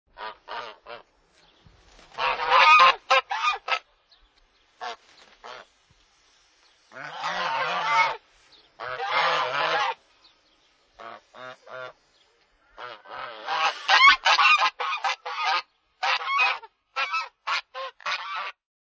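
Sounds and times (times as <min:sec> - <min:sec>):
geese: 0:00.1 - 0:01.1, 0:02.0 - 0:03.9, 0:04.8 - 0:05.8, 0:06.9 - 0:10.0, 0:11.0 - 0:12.0, 0:12.6 - 0:18.6.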